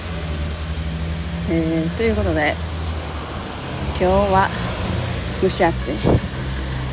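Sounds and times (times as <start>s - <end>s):
road traffic roar: 0.0s - 6.9s
speech: 1.5s - 2.7s, 4.0s - 4.6s, 5.4s - 6.3s.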